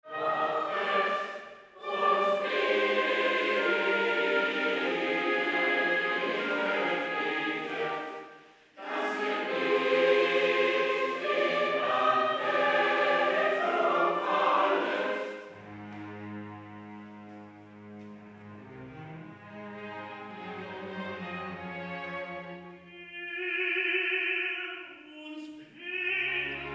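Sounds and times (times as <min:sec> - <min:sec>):
choir singing a motet from above: 0:00.0 - 0:16.5, 0:18.6 - 0:26.7
tenor singing recitative: 0:00.1 - 0:15.5, 0:22.8 - 0:26.7.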